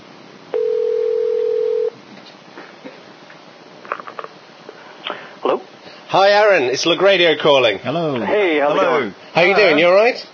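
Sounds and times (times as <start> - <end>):
telephone dial tone: 0.6 - 1.9
speech: 6.1 - 10.3.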